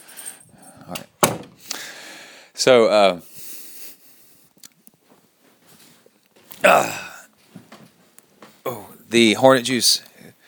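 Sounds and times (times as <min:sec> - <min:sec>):
door swinging shut with a solid thud: 0:01.2 - 0:01.6
speech: 0:02.6 - 0:03.3, 0:09.2 - 0:10.1.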